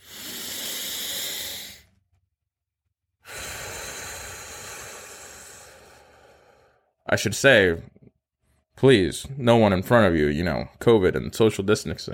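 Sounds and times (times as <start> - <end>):
longer slow exhale: 0.0 - 1.9, 3.2 - 6.9
long airy deep inhale during guided relaxation: 0.0 - 2.0, 3.2 - 7.0
speech: 7.1 - 8.0, 8.8 - 12.1.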